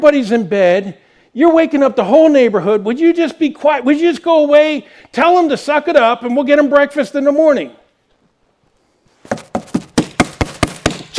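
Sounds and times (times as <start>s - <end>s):
speech: 0.0s - 7.8s
firm knocks on a door: 9.3s - 11.1s.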